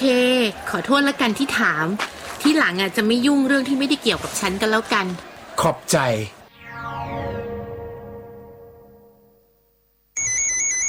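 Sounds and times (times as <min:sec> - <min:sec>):
speech: 0:00.0 - 0:06.4
sharp electronic beeping pattern: 0:06.5 - 0:09.6
mobile phone ringtone with bright tonal notes: 0:10.2 - 0:10.8.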